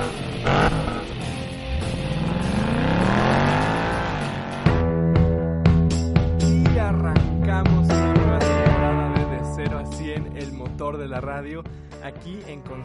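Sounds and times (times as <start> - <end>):
car engine turning over and revving up loudly: 0.0 - 4.9
upbeat music with steady beats: 0.0 - 12.8.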